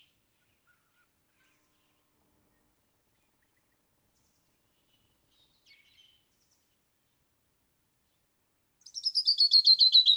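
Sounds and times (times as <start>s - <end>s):
canyon wren song of sweet clear descending whistled notes: 8.8s - 10.1s.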